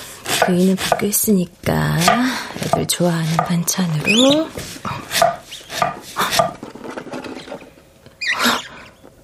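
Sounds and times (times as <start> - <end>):
speech: 0.5 - 5.3
small mice squeaking in a cabinet: 3.9 - 6.3, 8.2 - 9.0.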